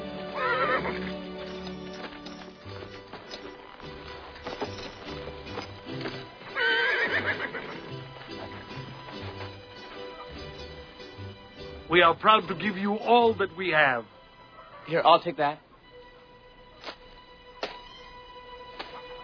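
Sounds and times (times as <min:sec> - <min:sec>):
hooves clip-clopping as riders set off: 0:00.2 - 0:13.4
horses whinnying: 0:00.3 - 0:01.2, 0:05.6 - 0:09.0
speech: 0:11.9 - 0:14.2, 0:14.9 - 0:15.6.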